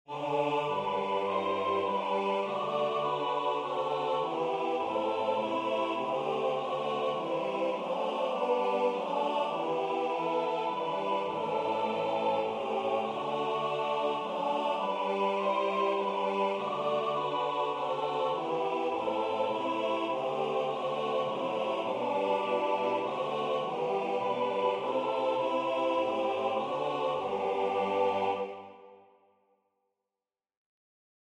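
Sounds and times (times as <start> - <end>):
SATB choir singing: 0.0 - 29.2.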